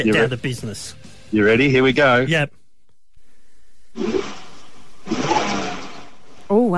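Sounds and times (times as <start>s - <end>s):
speech: 0.0s - 2.6s, 4.0s - 4.4s
car engine revving heard through a phone line: 4.0s - 6.4s.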